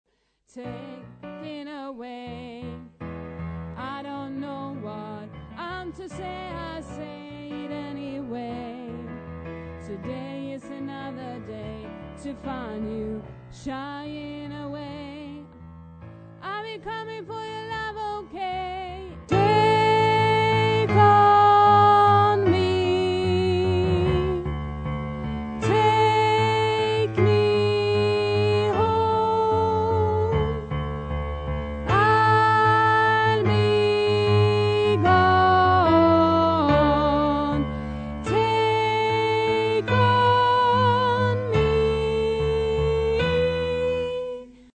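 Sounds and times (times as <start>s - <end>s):
bass line stem: 17.5s - 44.5s.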